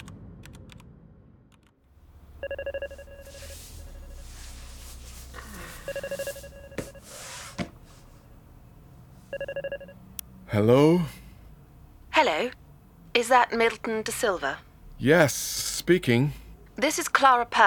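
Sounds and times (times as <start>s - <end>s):
low rumble: 0.0s - 7.1s, 7.7s - 17.6s
speech: 2.4s - 3.5s, 5.9s - 6.4s, 10.6s - 11.2s, 13.3s - 17.6s
electronic telephone ringing: 2.4s - 7.3s, 9.3s - 10.0s.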